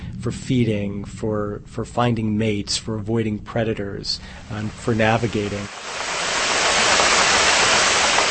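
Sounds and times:
speech: 0.2 - 6.0
underwater noise from a large ship: 4.2 - 8.2.

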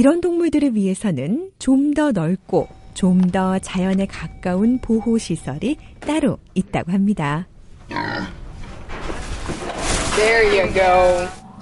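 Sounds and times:
speech: 0.0 - 8.4, 10.2 - 11.4
pigs grunting and squealing: 7.9 - 8.4.

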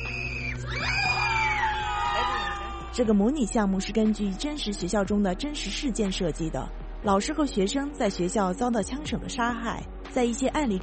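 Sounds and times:
students screaming and crying in a virtual reality school shooting simulation: 0.0 - 3.1
speech: 3.0 - 10.8.

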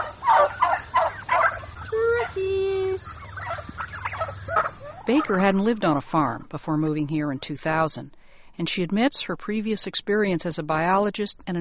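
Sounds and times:
Black Spanish turkeys gobbling on a farm: 0.0 - 5.7
speech: 5.1 - 11.5.

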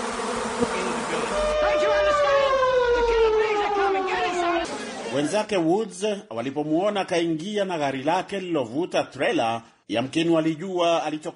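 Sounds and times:
swarm of thousands of bees pouring out of disturbed hives: 0.0 - 4.7
speech: 5.2 - 11.3.

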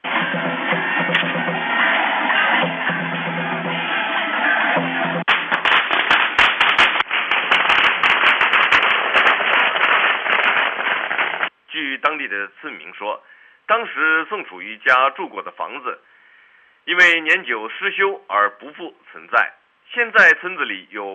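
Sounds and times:
festive din at a village celebration: 0.0 - 11.5
firecrackers popping during a village celebration: 5.2 - 11.6
speech: 12.3 - 16.1, 16.8 - 21.1.

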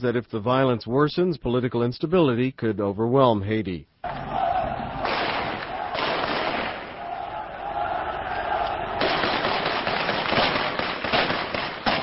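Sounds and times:
speech: 0.0 - 4.2
crowd shouting in city streets: 4.0 - 9.9
street commotion: 4.0 - 12.0
gunfire bursts in city streets: 5.0 - 7.0, 9.0 - 12.0.

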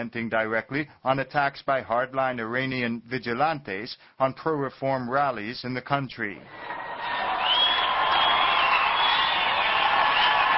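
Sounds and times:
speech: 0.0 - 7.2
thousands of supporters cheering at Tehran's Mehrabad airport in Iran: 6.5 - 10.5
whoops and shouts: 6.6 - 10.5.

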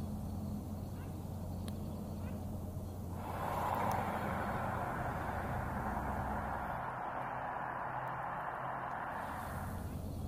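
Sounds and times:
steady low engine-like hum in a harbor: 0.0 - 10.2
dense rushing wash in a harbor: 3.1 - 10.2
faint clicks: 3.3 - 9.6.

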